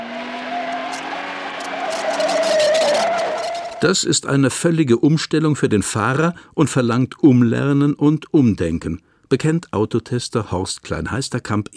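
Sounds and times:
car anti-lock brakes pulsing during hard braking: 0:00.0 - 0:03.8
car tyre and engine whine: 0:00.0 - 0:03.8
speech: 0:03.8 - 0:11.7.

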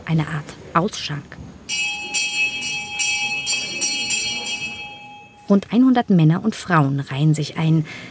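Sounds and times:
speech: 0:00.1 - 0:01.9, 0:05.5 - 0:08.0
low murmur: 0:01.5 - 0:05.5
bell ringing in an Ayahuasca church: 0:01.7 - 0:05.6.

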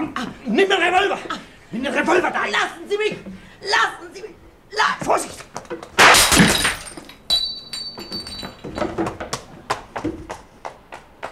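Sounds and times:
speech: 0:00.2 - 0:06.5
falling shards of window glass clinking: 0:06.0 - 0:09.0
window glass shattering: 0:06.0 - 0:09.0.

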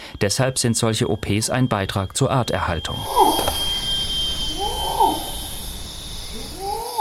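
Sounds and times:
high-pitched drone of cicadas in a dense forest: 0:00.0 - 0:06.9
speech: 0:00.2 - 0:03.5
male orangutan long calls: 0:02.9 - 0:06.9.

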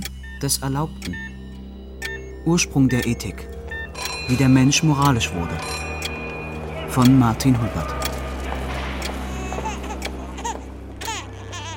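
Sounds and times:
steady low hum: 0:00.0 - 0:11.7
speech: 0:00.4 - 0:01.3, 0:02.4 - 0:05.9, 0:06.9 - 0:08.0
infant crying in short wails: 0:07.7 - 0:11.7.

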